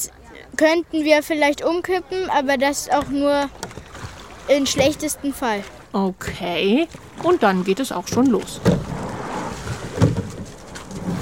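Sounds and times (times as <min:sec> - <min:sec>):
speech: 0:00.0 - 0:03.8, 0:04.5 - 0:08.9
water swishing around a boat rowed by four people at a brisk pace: 0:00.0 - 0:11.1
wind rumble from behind: 0:08.0 - 0:11.1.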